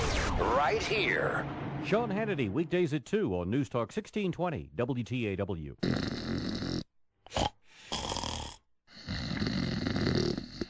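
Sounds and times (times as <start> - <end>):
speech: 0.6 - 6.6
person snoring: 5.8 - 10.6.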